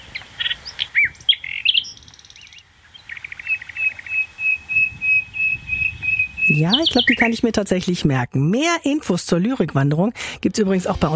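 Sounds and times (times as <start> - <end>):
nightingale singing a varied run of whistles, chirps and trills: 0.0 - 7.5
speech: 6.6 - 11.1.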